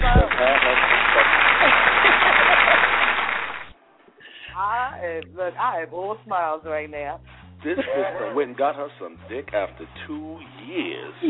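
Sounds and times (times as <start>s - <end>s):
laughter: 0.0s - 3.6s, 7.6s - 10.3s
crowd applause sound effect: 0.0s - 3.8s
speech: 5.5s - 11.2s.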